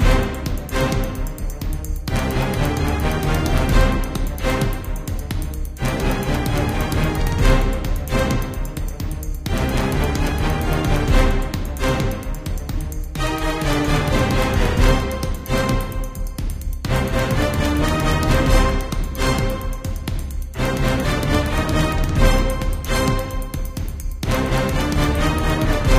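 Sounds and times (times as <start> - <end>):
action music: 0.0 - 25.9.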